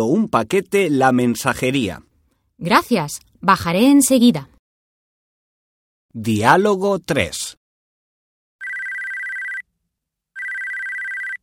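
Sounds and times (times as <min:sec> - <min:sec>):
speech: 0:00.0 - 0:04.5, 0:06.1 - 0:07.6
telephone ringing under documents: 0:08.6 - 0:09.7, 0:10.4 - 0:11.4.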